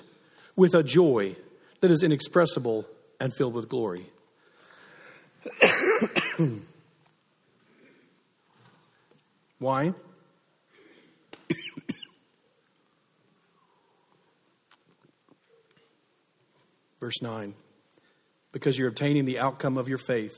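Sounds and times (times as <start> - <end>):
speech: 0.6 - 4.2, 5.4 - 6.7, 9.6 - 10.1, 17.0 - 17.6, 18.5 - 20.3
person coughing: 5.4 - 6.8, 11.5 - 12.2.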